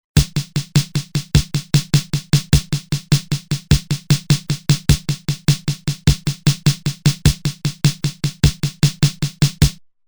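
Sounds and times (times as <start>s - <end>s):
Roland TR-505 drum machine fill in 4-4 time: 0.0s - 9.8s.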